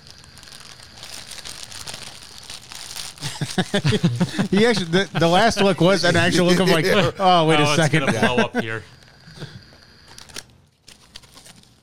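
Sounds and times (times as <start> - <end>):
package being torn open: 0.0 - 3.8, 10.1 - 11.8
wrapping crinkling and rustling: 0.0 - 6.0, 10.0 - 11.8
laughter: 3.2 - 8.9
speech: 3.4 - 9.0.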